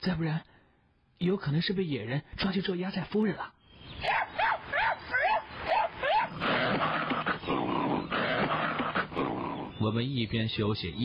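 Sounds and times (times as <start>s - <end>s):
speech: 0.0s - 0.5s, 1.2s - 4.5s, 9.8s - 11.0s
hunting dog barking frantically: 4.0s - 9.5s.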